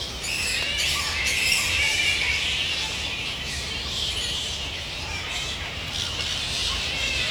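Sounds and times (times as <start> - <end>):
bat colony squawking and squealing in a reserve in Sydney: 0.2 - 4.3, 5.1 - 7.3.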